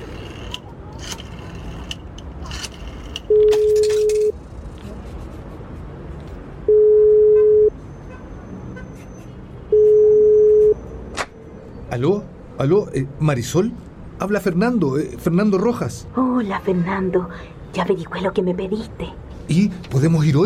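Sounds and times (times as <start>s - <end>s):
murmur of outdoor street noise: 0.0s - 20.4s
public telephone line tone beeps: 3.3s - 4.3s, 6.7s - 7.7s, 9.7s - 10.8s
speech: 12.0s - 20.4s.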